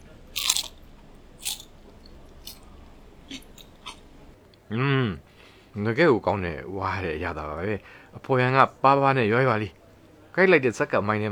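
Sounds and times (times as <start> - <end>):
crunchy bites into crispy fried food: 0.1 - 4.2
speech: 4.7 - 5.2, 5.8 - 9.8, 10.4 - 11.3.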